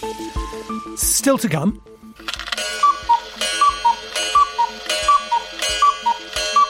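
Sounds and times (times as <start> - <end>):
speech: 0.0 - 2.4
clock ticking: 2.2 - 6.6
repeating two-note clock chime: 2.6 - 6.6.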